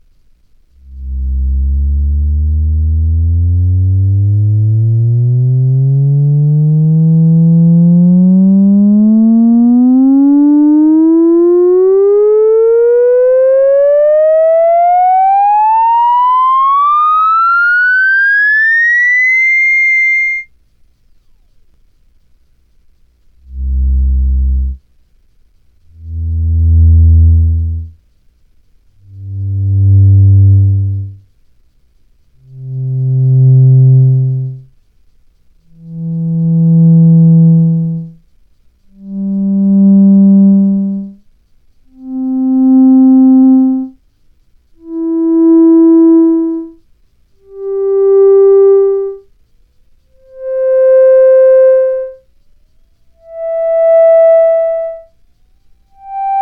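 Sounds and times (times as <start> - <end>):
theremin: 0.8 - 20.5, 23.4 - 24.8, 25.9 - 27.9, 29.1 - 31.2, 32.4 - 34.7, 35.7 - 38.2, 38.9 - 41.2, 41.9 - 44.0, 44.8 - 46.8, 47.4 - 49.3, 50.1 - 52.3, 53.1 - 55.2, 55.8 - 56.3.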